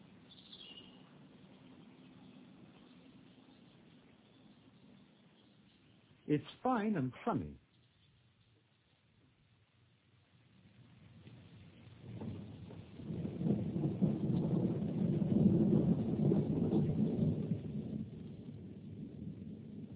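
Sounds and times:
rain: 0.0 - 6.3, 7.7 - 19.9
wind: 0.0 - 19.9
speech: 6.3 - 7.6
rolling thunder: 10.6 - 19.9.

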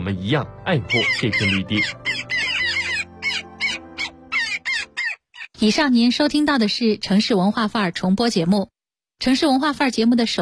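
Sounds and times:
speech: 0.1 - 2.4, 5.6 - 10.3
Daurian jackdaw calling in a green urban park in Beijing: 0.8 - 5.6.

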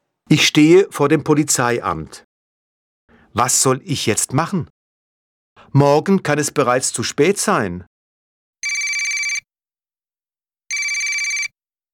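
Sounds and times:
speech: 0.3 - 2.2, 3.4 - 4.8, 5.6 - 7.9
mobile phone ringtone trilling: 8.6 - 9.5, 10.7 - 11.6.

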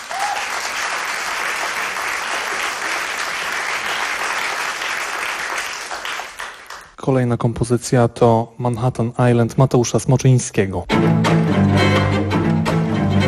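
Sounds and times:
audience applause after a live jazz performance: 0.0 - 7.0
speech: 7.1 - 12.2.

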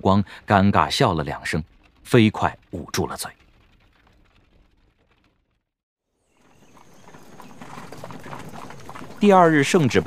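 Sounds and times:
speech: 0.0 - 3.4, 9.2 - 10.0
horse hooves clip-clopping as a horse-drawn carriage travels: 1.6 - 5.6, 6.3 - 10.0.

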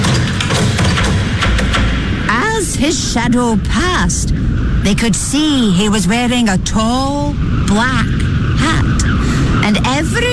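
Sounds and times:
man banging on doors around the outside of a house: 0.0 - 2.2
constant rumbling noise: 0.0 - 10.3
speech: 3.1 - 10.3.

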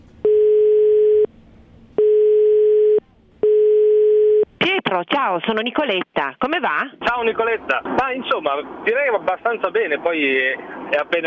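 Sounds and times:
ringback tone of an outgoing phone call: 0.2 - 1.3, 2.0 - 4.4
speech: 4.9 - 11.2.

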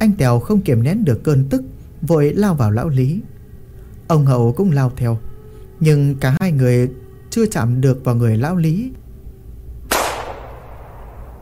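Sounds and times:
speech: 0.0 - 3.3, 4.1 - 9.0
low steady hum: 0.0 - 11.4
gunshot: 9.9 - 11.4.

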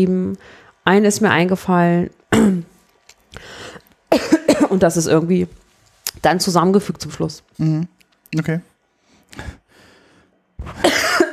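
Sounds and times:
speech: 0.0 - 2.7, 3.3 - 5.6, 6.2 - 8.7, 10.6 - 11.0
person coughing harshly: 2.3 - 2.7, 4.1 - 4.8, 10.6 - 11.3.

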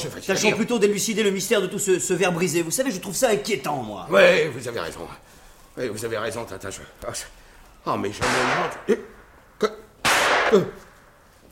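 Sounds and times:
speech: 0.0 - 9.8, 10.5 - 10.8
gunshots from a park: 8.2 - 9.3, 10.0 - 11.5.

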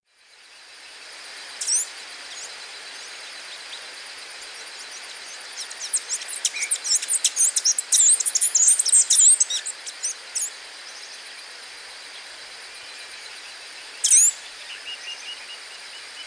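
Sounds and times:
faint steady hiss: 0.1 - 16.2
bird song of high thin chirps and quick twittering: 1.6 - 3.8, 4.5 - 11.2, 13.8 - 16.2.

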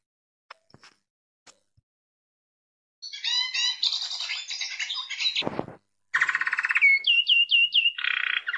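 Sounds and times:
hooded siskin singing: 3.0 - 5.5, 6.2 - 8.5.

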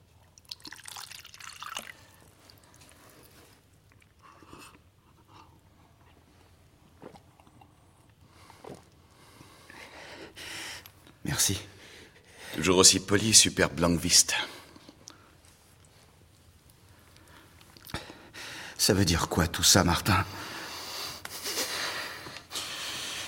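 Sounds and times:
water dripping and splashing: 0.3 - 2.9
person drinking water: 0.3 - 5.6, 6.9 - 9.1
speech: 11.4 - 11.7, 12.6 - 14.5, 18.9 - 20.4.

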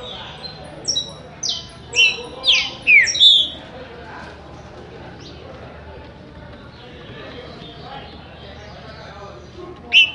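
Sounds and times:
Green-winged saltator song: 0.0 - 3.6, 9.9 - 10.1.

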